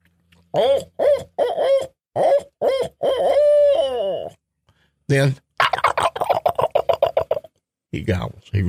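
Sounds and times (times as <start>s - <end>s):
speech: 0.5s - 2.5s, 5.1s - 5.4s, 8.0s - 8.6s
hunter imitating a barred-owl-style eight-note hoot locator call: 0.5s - 4.4s, 5.6s - 7.5s.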